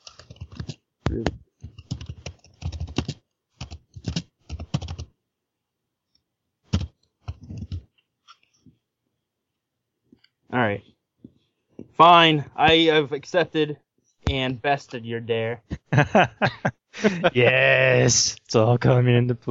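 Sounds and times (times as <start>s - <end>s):
computer keyboard typing: 0.0s - 5.1s, 6.7s - 8.5s
speech: 1.2s - 1.4s, 10.7s - 10.9s, 12.0s - 19.5s
laughter: 15.7s - 17.8s.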